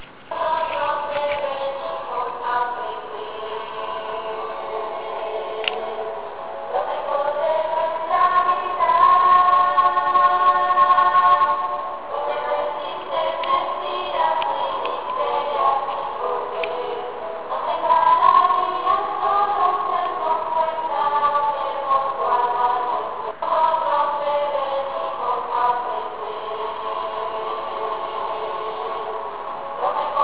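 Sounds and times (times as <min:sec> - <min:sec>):
youth choir singing: 0:00.0 - 0:30.2.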